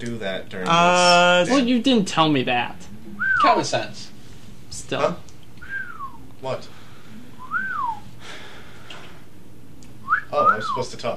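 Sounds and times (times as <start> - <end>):
speech: 0.0 - 2.8, 3.4 - 4.1, 4.8 - 5.2, 6.4 - 6.7, 10.3 - 11.1
person whistling a short rising-and-falling note: 3.2 - 3.5, 5.6 - 6.2, 7.4 - 8.1, 10.0 - 10.8.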